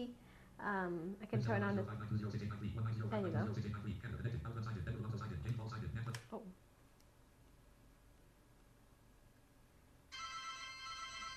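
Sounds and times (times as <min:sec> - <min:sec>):
speech: 0:00.0 - 0:06.7
phone ringing after speed dial: 0:10.1 - 0:11.3.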